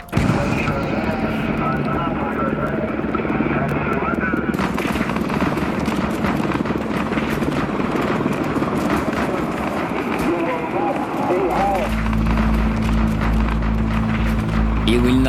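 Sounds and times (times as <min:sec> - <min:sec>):
chaotic crowd noise: 0:00.0 - 0:04.5, 0:10.0 - 0:15.2
helicopter flying overhead: 0:00.0 - 0:15.2
sharp bangs: 0:00.0 - 0:15.2.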